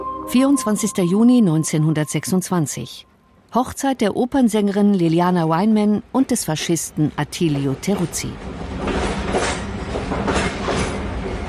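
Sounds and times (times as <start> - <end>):
speech: 0.3 - 8.9
train rattling along the rails: 7.4 - 11.4
train wheels clacking over track joints: 8.7 - 11.4.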